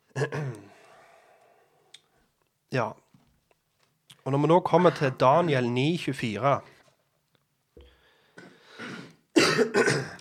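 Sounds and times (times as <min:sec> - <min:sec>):
person clearing throat: 0:00.1 - 0:00.8, 0:08.4 - 0:10.2
person coughing: 0:00.1 - 0:00.8, 0:08.4 - 0:10.2
speech: 0:02.7 - 0:03.0, 0:04.2 - 0:06.7, 0:09.6 - 0:10.2.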